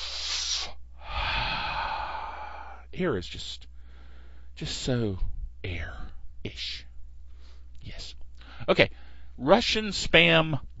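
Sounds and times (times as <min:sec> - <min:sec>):
person taking a deep cleansing breath: 0:00.0 - 0:02.9, 0:03.8 - 0:04.6, 0:07.3 - 0:07.7, 0:08.4 - 0:09.4
speech: 0:03.0 - 0:03.7, 0:04.6 - 0:06.9, 0:07.8 - 0:10.7.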